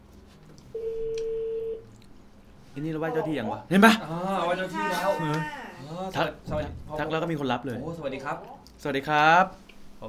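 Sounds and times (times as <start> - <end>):
telephone ringback tone on the line while a call is placed: 0.8 - 1.8
speech: 2.8 - 10.0.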